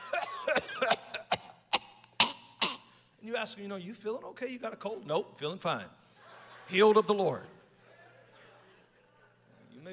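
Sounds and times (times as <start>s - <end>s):
voice imitating coughing in short sharp bursts: 0.0s - 3.0s
speech: 3.3s - 6.1s, 6.7s - 7.6s.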